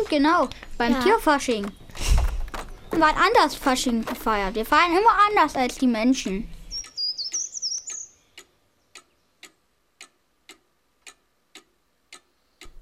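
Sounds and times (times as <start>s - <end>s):
cuckoo clock ticking: 0.0s - 1.9s, 2.7s - 12.7s
speech: 0.1s - 2.1s, 2.9s - 6.6s
brief high chirpy bird-like whistle: 6.7s - 8.2s.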